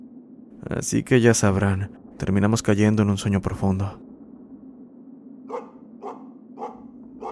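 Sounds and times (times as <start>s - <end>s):
constant low hum: 0.0s - 7.2s
speech: 0.6s - 4.1s
dogs barking with sharp yaps: 5.5s - 7.2s.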